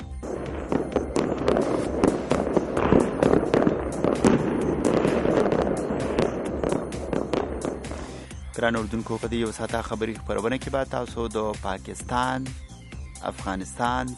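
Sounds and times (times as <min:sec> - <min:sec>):
celebratory gunfire shot into the air in Sanaa Yemen: 0:00.0 - 0:08.8
rough din: 0:00.0 - 0:14.1
speech: 0:08.6 - 0:12.6, 0:13.2 - 0:14.1.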